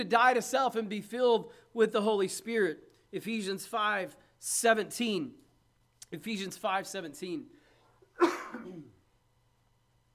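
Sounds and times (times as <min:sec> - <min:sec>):
speech: 0:00.0 - 0:05.4, 0:06.1 - 0:07.6, 0:08.2 - 0:08.9
harsh throaty cough: 0:08.0 - 0:09.1.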